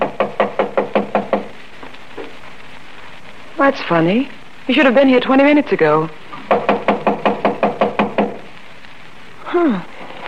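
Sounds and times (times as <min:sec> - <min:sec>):
knocking on a door: 0:00.0 - 0:01.6, 0:06.4 - 0:08.4
speech: 0:03.7 - 0:06.2, 0:09.5 - 0:10.0.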